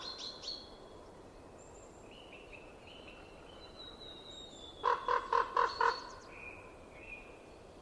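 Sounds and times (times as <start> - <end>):
common raven croaking in winter: 4.8 - 6.1.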